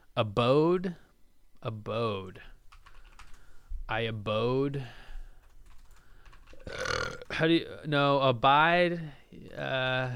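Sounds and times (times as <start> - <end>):
speech: 0.2 - 1.0, 1.6 - 2.5, 3.9 - 5.0, 7.4 - 10.1
loud burp into the microphone: 6.6 - 7.8.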